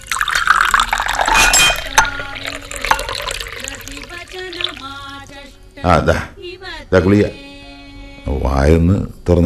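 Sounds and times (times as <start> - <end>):
water poured into a glass: 0.0 - 5.1
glass clinks: 0.2 - 3.5
speech: 5.8 - 6.3, 6.9 - 7.4, 8.2 - 9.4.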